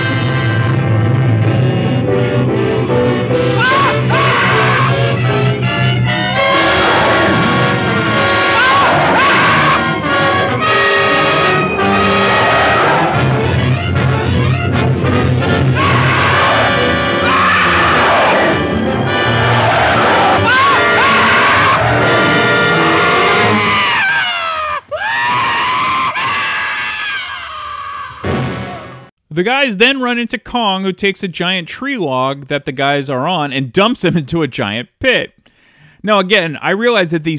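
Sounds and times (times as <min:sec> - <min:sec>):
dense orchestral film music: 0:00.0 - 0:23.6
man screaming in a film soundtrack: 0:03.5 - 0:05.4, 0:06.3 - 0:13.5, 0:15.6 - 0:29.0
speech: 0:29.4 - 0:35.4, 0:36.0 - 0:37.3.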